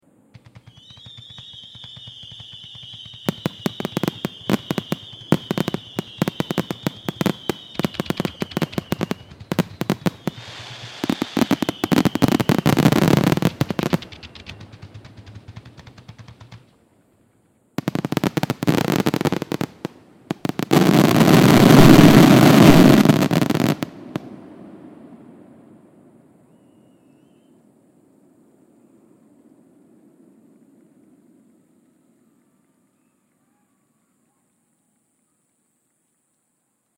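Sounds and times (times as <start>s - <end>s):
fireworks firing in rapid succession: 0.4s - 16.9s, 17.8s - 24.4s.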